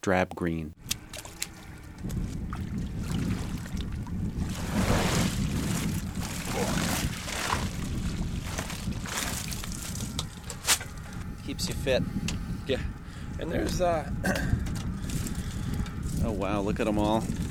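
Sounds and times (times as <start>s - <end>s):
speech: 0.0s - 0.9s, 2.0s - 2.6s, 11.5s - 14.7s, 16.2s - 17.4s
outdoor wind: 0.0s - 17.4s
boat noise: 0.8s - 17.4s
water sloshing, streaming and dripping from a mesh oyster bag hauled out of a river: 1.0s - 10.5s.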